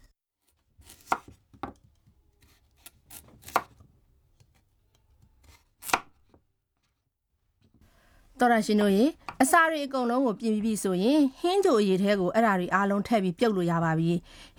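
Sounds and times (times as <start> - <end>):
kitchen knife chopping peeled carrots and potatoes into thick rings on a board: 0.8 - 3.8, 5.3 - 6.4
speech: 8.4 - 14.5.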